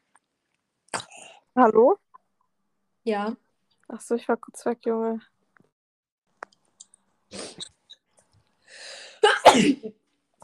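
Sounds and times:
speech: 1.6s - 2.0s, 3.1s - 5.3s, 9.6s - 10.0s
person sneezing: 7.3s - 7.7s, 9.0s - 10.0s
sharp inhale: 8.6s - 9.2s.

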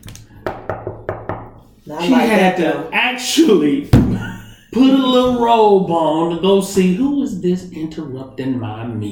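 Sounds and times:
solid knocks on a door: 0.5s - 1.6s, 3.9s - 4.2s
speech: 1.9s - 9.0s.

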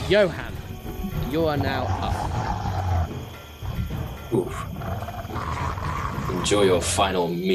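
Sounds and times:
speech: 0.1s - 0.5s, 1.3s - 2.1s, 4.3s - 4.7s, 6.4s - 7.5s
two large wolves growling and snarling in fog: 1.1s - 3.3s, 4.3s - 7.2s.

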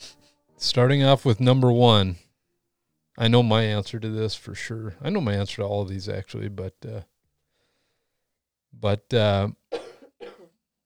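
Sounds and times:
speech: 0.6s - 2.2s, 3.2s - 7.1s, 8.7s - 9.6s
woman with a long cold coughing hoarsely: 9.7s - 10.6s.

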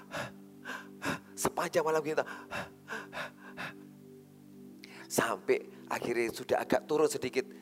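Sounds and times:
person imitating breathless panting like struggling for breath at high altitude: 0.0s - 1.4s, 2.3s - 3.8s
speech: 1.5s - 3.2s, 5.1s - 7.6s.

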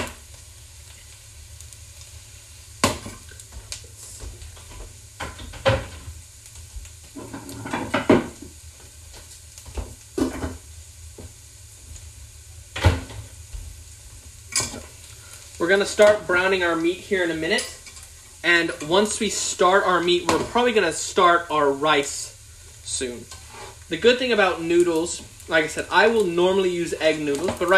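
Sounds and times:
onions frying and sizzling in a pan for stroganoff: 0.0s - 27.7s
speech: 15.6s - 17.8s, 18.4s - 22.3s, 22.9s - 27.7s
scrapes and clanks of stirring onions in a pan: 23.3s - 23.9s.

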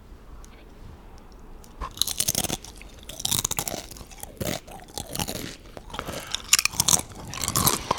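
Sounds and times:
crunching and chewing Doritos tortilla chips: 1.7s - 7.9s.

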